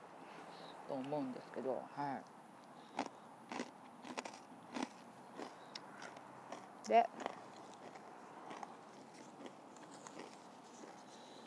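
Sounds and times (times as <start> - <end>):
speech: 0.9 - 2.4, 6.9 - 7.3
someone chewing crunchy kaki no tane rice crackers: 2.8 - 11.4.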